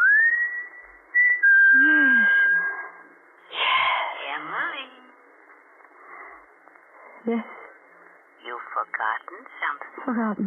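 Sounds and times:
man whistling a signal: 0:00.0 - 0:02.9
burst of voices: 0:03.5 - 0:04.6
speech: 0:07.3 - 0:07.6, 0:09.0 - 0:10.4.

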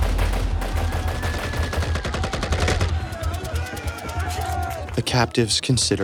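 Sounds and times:
rapid gunfire: 0:00.0 - 0:04.6
speech: 0:05.0 - 0:06.0.

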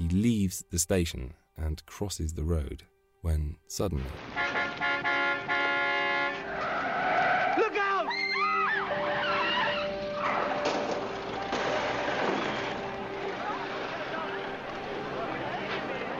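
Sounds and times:
speech: 0:00.1 - 0:04.5
busy street traffic: 0:04.2 - 0:08.1, 0:08.8 - 0:16.1
car horn blaring: 0:04.3 - 0:06.6
car tires squealing in a skid: 0:06.3 - 0:16.1
car hitting a pedestrian crossing the road: 0:10.6 - 0:12.7.

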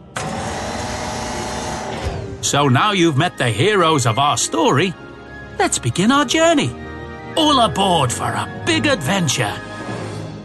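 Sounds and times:
gantry crane motor whirring as it lifts and loads cargo on a dock: 0:00.0 - 0:02.4
speech: 0:02.4 - 0:05.0, 0:05.6 - 0:06.8, 0:07.4 - 0:09.7.

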